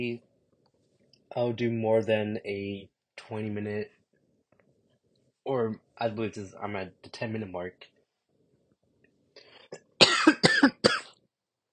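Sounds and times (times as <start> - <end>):
speech: 0.0 - 0.3, 1.3 - 4.0, 5.5 - 7.9
harsh coughs: 9.6 - 11.2.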